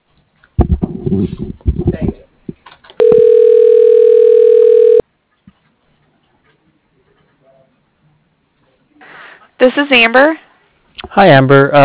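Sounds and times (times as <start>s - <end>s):
speech: 1.1s - 1.7s, 9.7s - 10.4s, 11.1s - 11.8s
telephone tone while dialing an extension on an automated phone line: 3.0s - 5.0s.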